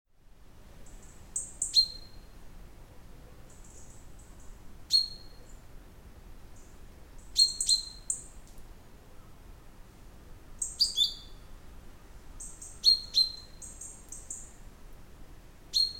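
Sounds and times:
faint low hiss: 0.1s - 15.9s
common chaffinch calls, Fringilla coelebs: 0.9s - 2.3s, 4.9s - 5.5s, 7.3s - 8.3s, 10.6s - 11.4s, 12.4s - 14.5s, 15.7s - 15.9s.

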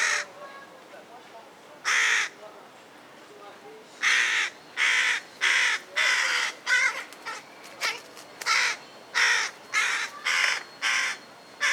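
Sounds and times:
carrion crow Corvus corone giving harsh drawn-out caws: 1.9s - 2.4s, 4.0s - 7.5s, 8.5s - 11.7s.

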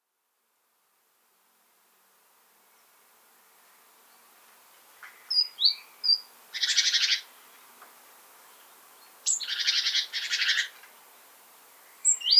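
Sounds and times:
Great tit Parus major sharp high whistled calls: 5.3s - 7.2s, 9.2s - 10.8s, 12.0s - 12.3s.

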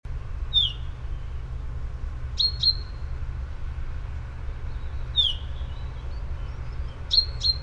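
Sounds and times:
low steady background noise: 0.1s - 7.6s
Common chaffinch Fringilla coelebs calling: 0.5s - 1.4s, 2.3s - 3.1s, 4.6s - 7.6s.

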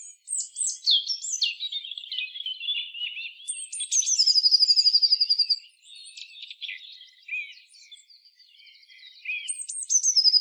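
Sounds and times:
Eurasian blue tit Cyanistes caeruleus calls and song: 0.0s - 10.3s.

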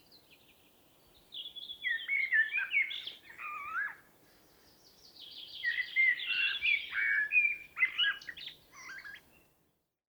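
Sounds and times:
common blackbird Turdus merula singing: 1.3s - 4.0s, 4.8s - 9.3s.

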